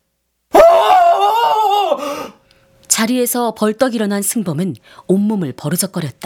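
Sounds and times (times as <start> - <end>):
man screaming: 0.5 - 2.4
speech: 3.0 - 6.2.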